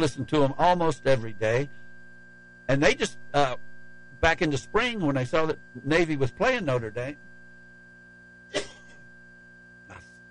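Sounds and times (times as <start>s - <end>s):
speech: 0.0s - 1.8s, 2.7s - 7.3s
cough with the throat catching: 8.5s - 9.0s.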